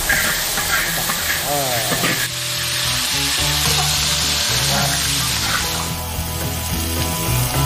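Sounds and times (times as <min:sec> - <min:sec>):
spatula scraping and tossing in a wok: 0:00.0 - 0:07.1
soaked mixed grains and rice sizzling in hot oil: 0:00.0 - 0:07.6.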